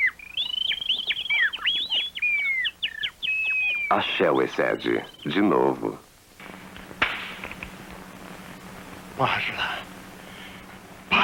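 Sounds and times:
caller on the phone whistling an imitation of birdsong: 0:00.0 - 0:03.9
speech: 0:03.9 - 0:06.0, 0:09.2 - 0:09.8.

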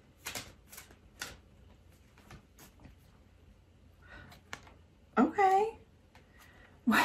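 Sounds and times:
oracle card deck being shuffled: 0:00.0 - 0:03.0.

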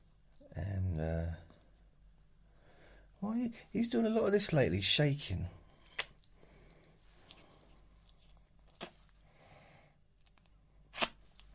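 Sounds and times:
speech: 0:03.4 - 0:05.6
pet sneezing: 0:10.9 - 0:11.2.

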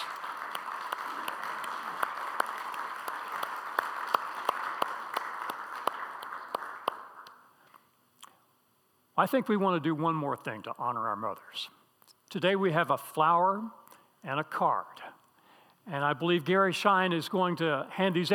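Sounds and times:
audience applauding to honor mothers: 0:00.0 - 0:07.4
single stray hand clap: 0:00.0 - 0:07.4
speech: 0:09.2 - 0:15.0, 0:15.9 - 0:18.3.

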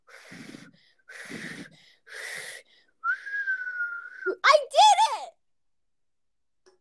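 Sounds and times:
breathy puffs of air: 0:00.0 - 0:03.6
person whistling a steady high tone: 0:03.0 - 0:04.3.

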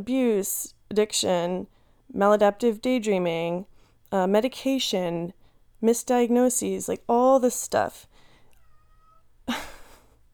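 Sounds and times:
speech: 0:00.0 - 0:08.1
cat meowing: 0:08.5 - 0:09.3.

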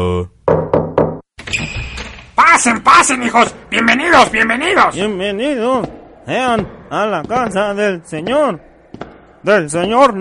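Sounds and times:
knocking on a door as a secret signal: 0:00.5 - 0:01.2
speech: 0:02.6 - 0:08.7, 0:09.4 - 0:10.1.

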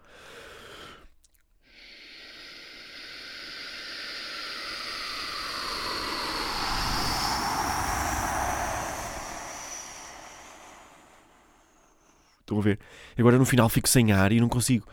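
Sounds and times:
voice imitating an airplane taking off: 0:02.0 - 0:11.8
speech: 0:12.5 - 0:14.9.

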